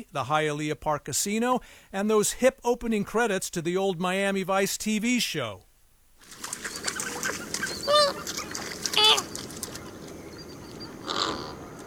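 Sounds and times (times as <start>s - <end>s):
speech: 0.0s - 6.4s
outdoor hiss: 0.0s - 11.8s
flamingo honking: 6.7s - 11.8s.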